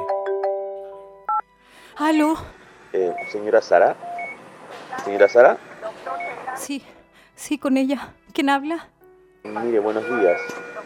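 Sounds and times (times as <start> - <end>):
speech: 2.0 - 4.1, 5.0 - 5.7, 6.6 - 10.8
telephone ringing with a bright electronic melody: 3.0 - 4.4, 5.0 - 6.6, 9.5 - 10.8.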